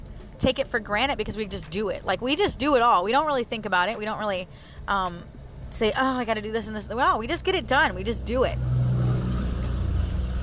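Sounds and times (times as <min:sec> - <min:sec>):
speech: 0:00.4 - 0:08.7
truck driving past with deep engine rumble: 0:07.9 - 0:10.4.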